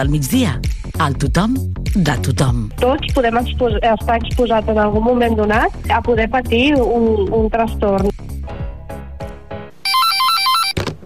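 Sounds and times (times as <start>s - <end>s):
speech: 0.0s - 8.2s
electronic telephone ringing in a two-tone warble: 9.8s - 10.8s.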